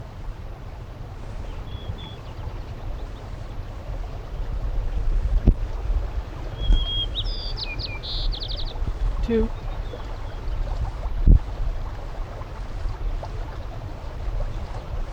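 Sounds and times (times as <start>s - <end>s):
wind rumble: 0.0s - 15.1s
white-crowned sparrow song: 1.2s - 4.6s, 6.4s - 10.8s
speech: 9.3s - 9.6s.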